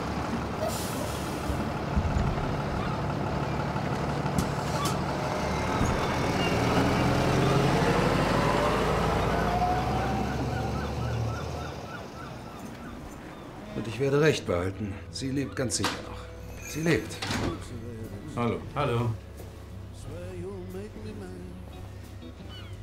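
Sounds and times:
bus engine droning and slowing: 0.0 - 22.8
bus air brakes hissing: 0.6 - 1.6
speech: 14.0 - 16.1, 16.7 - 19.2.

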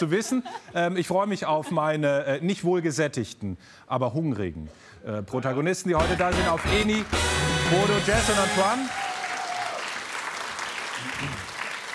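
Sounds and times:
speech: 0.0 - 9.0
audience applause: 6.0 - 11.9.

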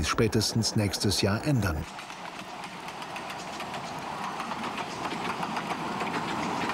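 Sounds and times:
speech: 0.0 - 2.2
miniature exhibition railway train on 381 mm gauge track with Krauss locomotive running: 0.0 - 6.7
miniature train wheels clattering on track: 1.8 - 6.7.

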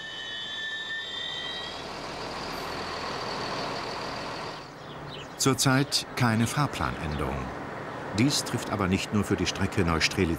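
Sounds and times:
thin high-pitched squeal: 0.0 - 4.7
train engine rumbling in a station: 0.0 - 5.0
speech: 5.4 - 10.3.

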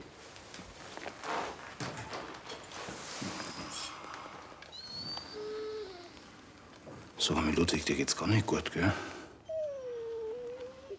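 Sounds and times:
dog whimpering: 4.7 - 6.2, 9.4 - 10.9
speech: 7.2 - 9.1.

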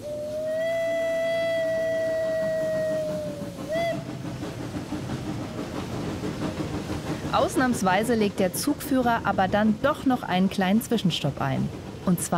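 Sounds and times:
steam locomotive long whistle and short toot: 0.0 - 4.3
steam locomotive rhythmic chuffing: 0.0 - 12.3
steam locomotive wheels rolling: 0.0 - 12.3
speech: 7.4 - 12.3.

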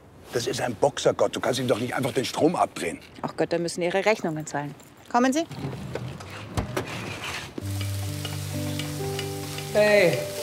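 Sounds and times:
speech: 0.4 - 6.0, 9.8 - 10.3
sharp scraping stirs in a frying pan: 6.1 - 9.7
onions sizzling in a hot frying pan: 7.6 - 10.4.

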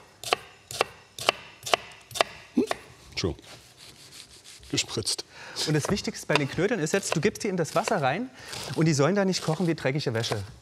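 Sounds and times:
knife dicing a red onion on a board: 0.0 - 2.8, 5.8 - 8.7, 10.2 - 10.6
speech: 3.2 - 3.6, 4.7 - 10.6.

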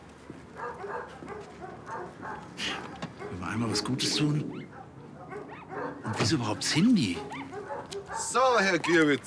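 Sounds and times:
speech: 3.5 - 4.6, 6.1 - 7.4, 8.1 - 9.2
dog yelping and whimpering: 4.5 - 6.1, 7.2 - 8.2.

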